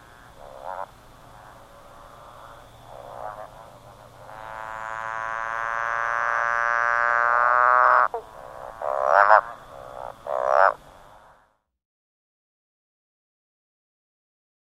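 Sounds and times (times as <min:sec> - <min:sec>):
motorbike frog call with soft notes, a long droning note and sharp bursts: 0:00.0 - 0:11.6.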